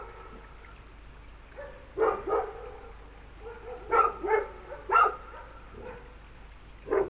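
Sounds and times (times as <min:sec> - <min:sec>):
dog barking in short sharp bursts: 0:01.6 - 0:06.2, 0:06.8 - 0:07.0.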